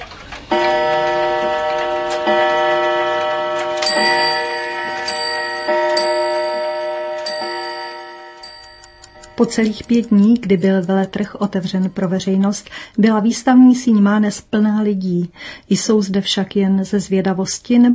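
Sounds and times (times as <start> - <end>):
antique clocks ticking: 0.0 - 13.8
bell-like chime tones of antique clocks: 0.5 - 12.1
speech: 9.4 - 17.9.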